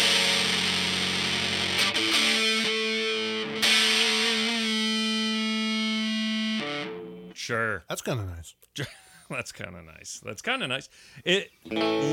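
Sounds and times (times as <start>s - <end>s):
Strat-style electric guitar played through heavy distortion: 0.0s - 7.4s, 11.7s - 12.1s
speech: 7.5s - 12.1s.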